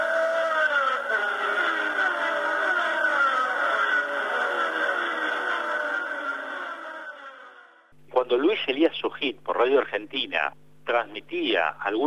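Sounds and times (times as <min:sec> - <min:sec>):
racing cars speeding down the main straight of a race track in Argentina: 0:00.0 - 0:07.9
speech: 0:08.3 - 0:12.0.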